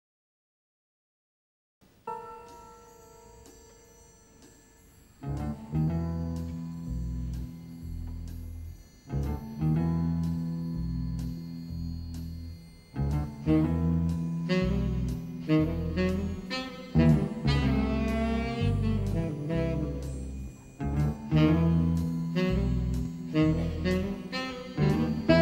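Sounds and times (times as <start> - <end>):
tenor saxophone: 5.2 - 25.4.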